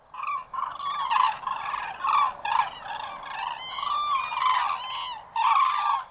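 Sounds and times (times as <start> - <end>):
cranes trumpeting calls: 0.1 - 6.0.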